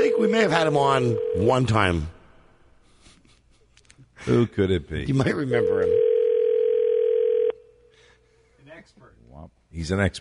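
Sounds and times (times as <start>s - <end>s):
electronic telephone ring tone: 0.0s - 1.8s, 5.6s - 7.6s
speech: 0.0s - 2.2s, 4.2s - 6.1s, 9.7s - 10.1s.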